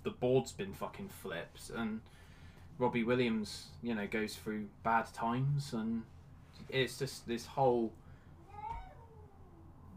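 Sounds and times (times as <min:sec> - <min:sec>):
speech: 0:00.2 - 0:08.0
cat meowing downstairs: 0:08.4 - 0:09.9.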